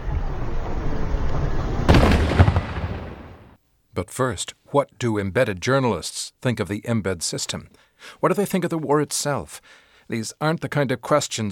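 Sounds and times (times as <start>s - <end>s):
loud booming explosion in a war zone: 0.0s - 3.6s
steady hiss: 0.0s - 11.5s
speech: 4.0s - 11.5s.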